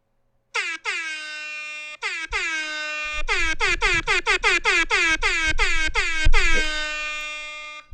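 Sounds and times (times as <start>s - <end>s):
air horn blasts and short honks: 0.6s - 7.9s.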